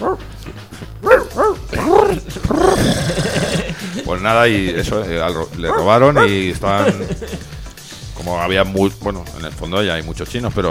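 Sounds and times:
dog barking: 0:00.0 - 0:00.3, 0:01.0 - 0:02.2, 0:05.7 - 0:06.4
speech: 0:00.0 - 0:00.8, 0:04.2 - 0:07.5, 0:08.2 - 0:10.7
laughter: 0:01.7 - 0:08.1.

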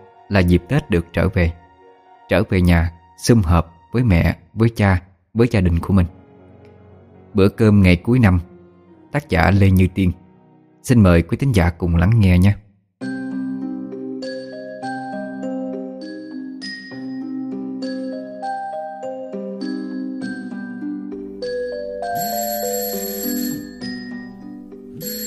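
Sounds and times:
speech: 0:00.3 - 0:01.6, 0:02.3 - 0:06.2, 0:07.4 - 0:08.5, 0:09.1 - 0:10.2, 0:10.8 - 0:13.1
mobile phone alarm ringtone beside a bed: 0:21.4 - 0:25.2.

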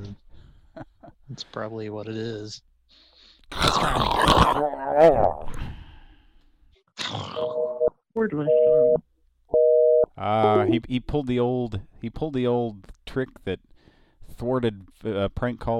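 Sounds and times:
speech: 0:00.8 - 0:02.7, 0:03.5 - 0:05.7, 0:08.2 - 0:09.0, 0:10.2 - 0:13.7, 0:14.3 - 0:15.7
busy tone from a corded landline phone left off the hook: 0:07.4 - 0:09.0, 0:09.6 - 0:10.8.

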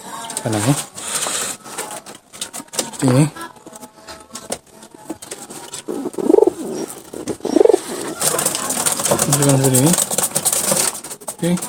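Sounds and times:
speech: 0:00.4 - 0:01.0, 0:03.0 - 0:03.5, 0:09.4 - 0:10.2, 0:11.4 - 0:11.6
pigeon on its nest cooing: 0:05.4 - 0:09.6.

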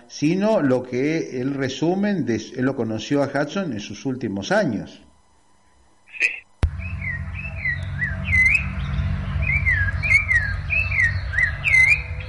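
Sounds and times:
speech: 0:00.1 - 0:05.1
low rumble: 0:06.6 - 0:12.2
thrush singing whistled phrases: 0:06.6 - 0:12.2.

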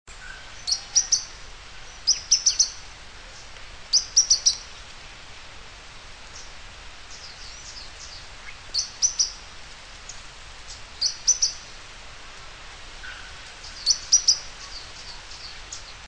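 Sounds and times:
faint steady hiss: 0:00.1 - 0:16.0
bird song of high thin chirps: 0:00.2 - 0:04.8, 0:06.3 - 0:09.5, 0:10.1 - 0:11.7, 0:13.0 - 0:16.0.

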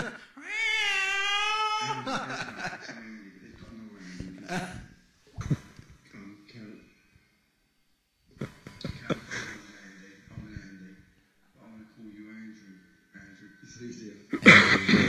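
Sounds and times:
people talking: 0:00.0 - 0:00.2, 0:01.2 - 0:07.0, 0:08.3 - 0:15.0
laughter: 0:00.0 - 0:00.3, 0:01.8 - 0:06.3, 0:08.4 - 0:10.9, 0:14.3 - 0:15.0
cat in heat yowling: 0:00.4 - 0:02.6.

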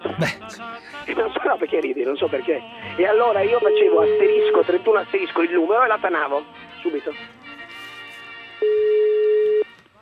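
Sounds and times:
speech: 0:00.2 - 0:07.4
telephone ringing on a phone line: 0:03.0 - 0:04.8, 0:08.6 - 0:09.8.

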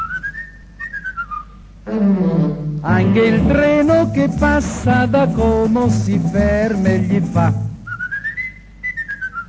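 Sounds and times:
human whistling imitating a blackbird's song: 0:00.0 - 0:01.6, 0:07.8 - 0:09.4
speech: 0:01.8 - 0:07.6
soft low instrumental backing: 0:02.4 - 0:07.8.

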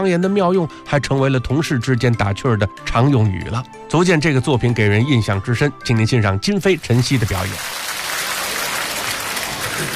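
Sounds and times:
speech: 0:00.0 - 0:07.8
audience applause at a live comedy performance: 0:07.0 - 0:09.9.

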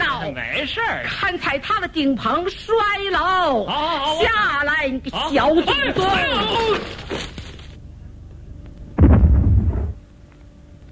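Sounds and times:
speech: 0:00.3 - 0:07.3
low rumbling explosion in a house from a small home experiment: 0:09.0 - 0:10.0.

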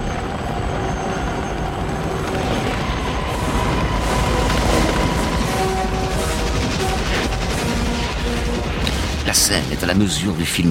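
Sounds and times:
helicopters droning in a war film battle scene: 0:00.0 - 0:10.7
bomb and napalm explosions in a war film battle scene: 0:02.1 - 0:10.3
gunfire bursts in a war film battle scene: 0:02.4 - 0:10.0
speech: 0:09.4 - 0:10.7.

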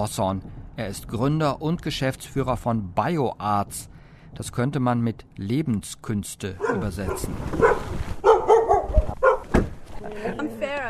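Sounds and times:
speech: 0:00.0 - 0:07.9
female dog barking and yipping at a house by the woods: 0:06.6 - 0:09.6.

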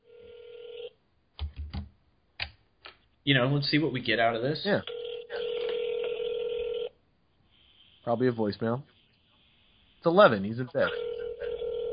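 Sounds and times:
telephone dial tone: 0:00.0 - 0:00.9, 0:04.9 - 0:07.0, 0:10.9 - 0:11.9
thudding telephone key presses: 0:01.4 - 0:02.6
speech: 0:03.2 - 0:04.9, 0:08.1 - 0:09.0, 0:10.0 - 0:11.1.

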